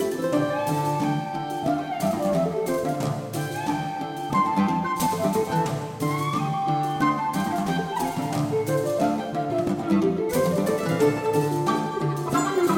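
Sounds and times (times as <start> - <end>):
Irish low whistle: 0.2 - 12.7.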